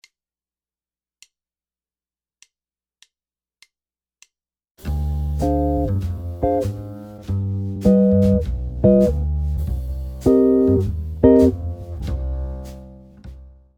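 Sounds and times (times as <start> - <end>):
guitar playing jazz chord progression: 5.3 - 9.3, 10.2 - 12.3.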